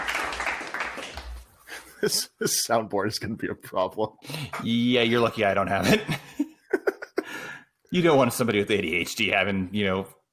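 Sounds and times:
soft polite golf clap: 0:00.0 - 0:01.5
speech: 0:02.0 - 0:06.2, 0:07.9 - 0:10.2.

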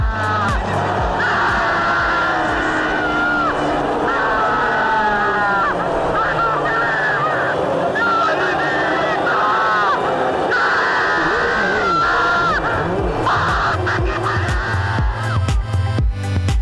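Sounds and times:
racing driver screaming with joy over a crackling team radio: 0:00.0 - 0:15.4
laughter: 0:00.0 - 0:15.5.

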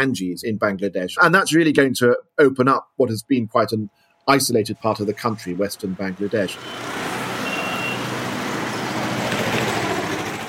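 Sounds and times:
dense city traffic of engines and trucks: 0:00.0 - 0:00.4, 0:03.3 - 0:10.4
speech: 0:00.0 - 0:07.0
faint high beep or horn tone: 0:07.4 - 0:08.0.

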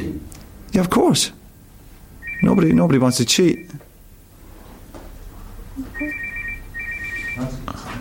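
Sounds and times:
speech: 0:00.8 - 0:01.4, 0:02.4 - 0:03.9
journalist's mobile phone ringtone with high warbling melody: 0:02.2 - 0:02.8, 0:05.9 - 0:07.5.

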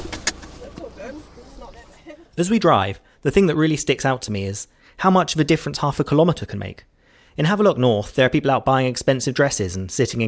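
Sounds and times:
low truck engine rumble: 0:00.0 - 0:02.3
speech: 0:01.1 - 0:10.2.

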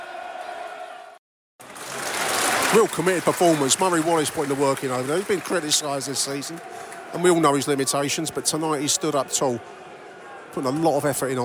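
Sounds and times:
large football crowd applauding and cheering: 0:00.0 - 0:09.1
speech: 0:02.7 - 0:09.8, 0:10.6 - 0:11.4.

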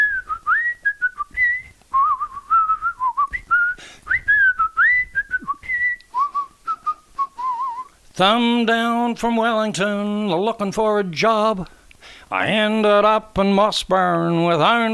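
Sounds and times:
person whistling a lively tune: 0:00.0 - 0:08.0
speech: 0:08.2 - 0:14.9.

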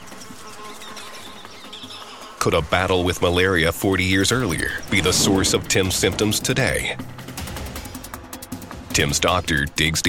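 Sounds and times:
mosquitoes buzzing in a jungle in Vietnam: 0:00.0 - 0:02.7
speech: 0:02.4 - 0:07.2, 0:09.0 - 0:10.0.

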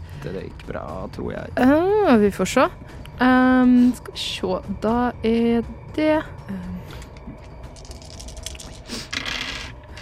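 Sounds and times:
speech: 0:00.2 - 0:07.1
many dice rolling and rattling on a table: 0:07.8 - 0:10.0.

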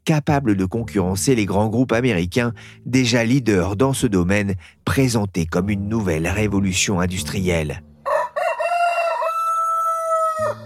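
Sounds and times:
speech: 0:00.1 - 0:07.9
rooster crowing: 0:08.0 - 0:10.6.

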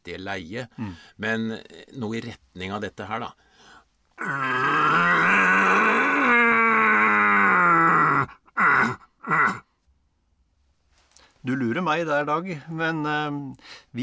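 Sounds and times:
speech: 0:00.0 - 0:05.6, 0:11.4 - 0:14.0
man imitating a red deer stag's roar as a lure call: 0:04.2 - 0:09.7
man making short grunting deer calls: 0:04.2 - 0:09.7.

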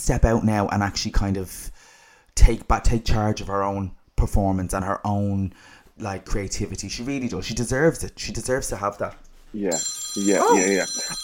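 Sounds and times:
speech: 0:00.0 - 0:01.8, 0:02.4 - 0:11.2
phone ringing with a bright electronic ringtone: 0:09.7 - 0:11.2.

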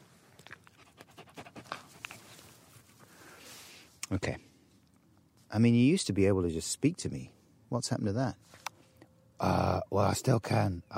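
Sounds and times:
dog panting: 0:00.7 - 0:02.2
speech: 0:04.1 - 0:04.5, 0:05.5 - 0:08.6, 0:09.4 - 0:10.9.

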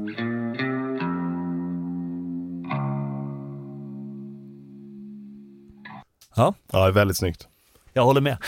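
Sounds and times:
speech: 0:00.0 - 0:00.4, 0:06.4 - 0:08.4
electric guitar through Fender amp vibrato tremolo effect: 0:00.0 - 0:06.0.

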